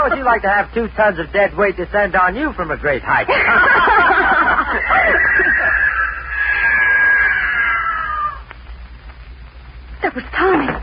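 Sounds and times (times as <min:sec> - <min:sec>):
speech: 0:00.0 - 0:04.0, 0:10.1 - 0:10.8
laughter: 0:03.2 - 0:06.8
mountain lion yowling going into the woods: 0:04.8 - 0:08.5.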